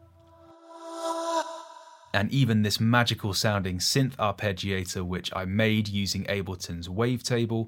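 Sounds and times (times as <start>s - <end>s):
sustained tone: 0.0s - 2.4s
reversed vocal sample: 0.3s - 2.4s
speech: 2.1s - 7.6s.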